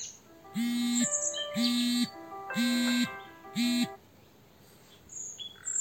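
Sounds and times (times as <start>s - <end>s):
European robin song: 0.3s - 4.0s.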